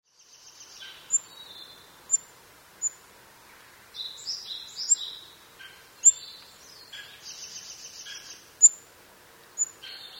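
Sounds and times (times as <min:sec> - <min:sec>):
faint steady background hiss: 0:00.1 - 0:10.1
Olive-backed pipit song and calls with buzzy trills: 0:00.6 - 0:03.0, 0:04.0 - 0:08.8, 0:09.6 - 0:10.1.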